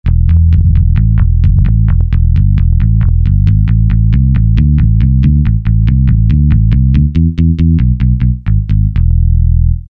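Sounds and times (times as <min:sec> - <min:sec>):
Alesis QS8 synthesizer bass factory preset: 0:00.0 - 0:09.8.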